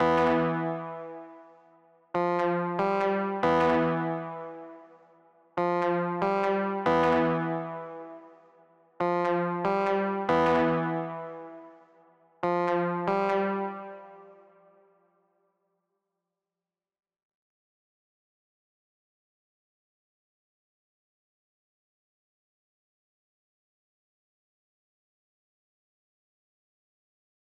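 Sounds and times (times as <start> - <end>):
Prophet 5 synth loop in E minor: 0.0 - 1.4, 2.2 - 4.9, 5.6 - 8.4, 9.0 - 11.8, 12.4 - 14.4.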